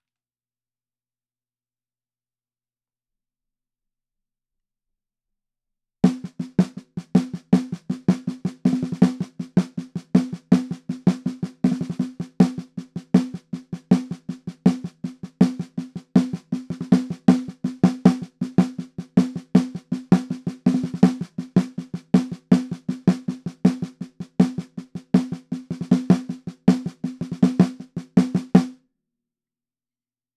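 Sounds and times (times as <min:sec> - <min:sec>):
percussion bridge snare drum: 0:06.1 - 0:28.8.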